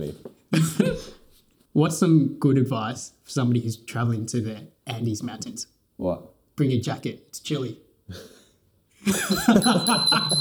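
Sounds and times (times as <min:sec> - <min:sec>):
speech: 0:00.0 - 0:01.2, 0:01.8 - 0:08.4, 0:09.0 - 0:10.3
burst of laughter: 0:09.0 - 0:10.3
small bell ringing with a bright high tone: 0:09.1 - 0:10.3.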